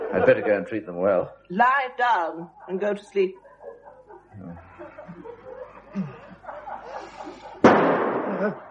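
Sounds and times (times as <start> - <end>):
laughter: 0.0 - 1.2, 2.2 - 8.6
speech: 0.1 - 3.4, 8.4 - 8.6
gunshot: 7.6 - 8.6.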